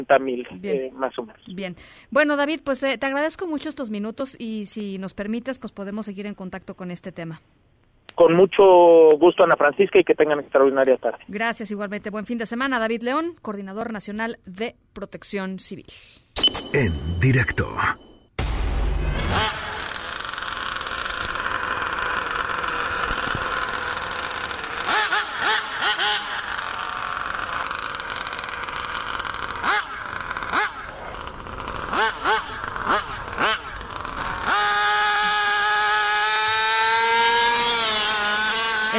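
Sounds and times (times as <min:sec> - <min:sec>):
speech: 0:00.0 - 0:18.1
Mexico Grand Prix racing car engine revving: 0:19.1 - 0:38.9.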